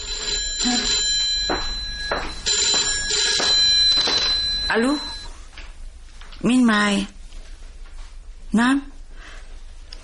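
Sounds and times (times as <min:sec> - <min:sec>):
telephone bell ringing: 0:00.0 - 0:05.3
speech: 0:00.6 - 0:01.0, 0:04.8 - 0:05.1, 0:06.4 - 0:07.2, 0:08.5 - 0:08.9.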